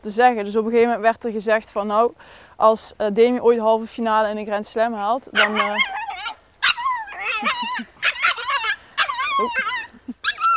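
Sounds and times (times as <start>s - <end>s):
speech: 0.0s - 6.4s, 7.4s - 7.9s, 9.4s - 9.8s
dog barking and yipping in agitated bursts: 5.4s - 5.8s
dog whimpering with high whines: 5.4s - 10.5s.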